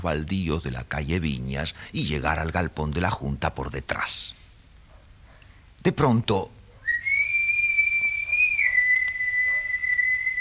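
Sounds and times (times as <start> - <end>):
speech: 0.0 - 4.4, 5.8 - 6.6
distant whistle: 6.7 - 10.3.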